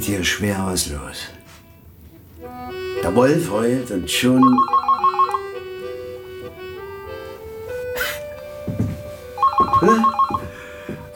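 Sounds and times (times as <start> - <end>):
speech: 0.0 - 1.4, 2.5 - 4.8, 9.8 - 10.2
sustained musical tone: 2.3 - 11.1
telephone ringing in short warbling bursts: 4.0 - 5.9, 9.4 - 10.7.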